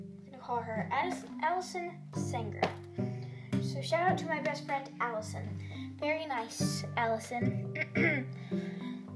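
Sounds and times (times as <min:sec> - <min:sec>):
speech: 0:00.5 - 0:03.0, 0:03.8 - 0:08.9
person coughing: 0:07.8 - 0:08.3.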